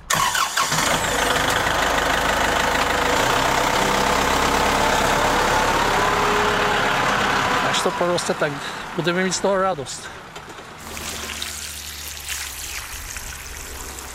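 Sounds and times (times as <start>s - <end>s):
car engine running as the car drives on: 0.9s - 11.4s
speech: 8.0s - 10.3s.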